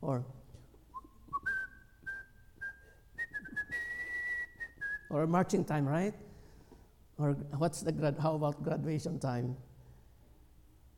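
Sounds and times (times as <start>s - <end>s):
speech: 0.0s - 0.4s, 5.1s - 6.3s, 7.2s - 9.7s
whistling kettle: 0.9s - 5.1s.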